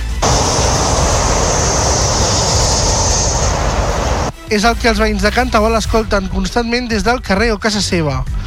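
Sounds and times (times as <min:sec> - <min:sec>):
heavy motorway traffic roar: 0:00.0 - 0:04.3
speech: 0:04.5 - 0:08.4.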